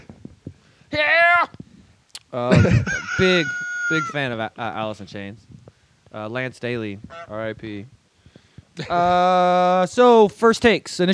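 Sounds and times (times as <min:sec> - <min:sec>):
speech: 0:00.9 - 0:01.2, 0:02.3 - 0:05.5, 0:06.1 - 0:08.0, 0:08.8 - 0:11.1
laughter: 0:02.4 - 0:04.2
rooster crowing: 0:02.9 - 0:04.2.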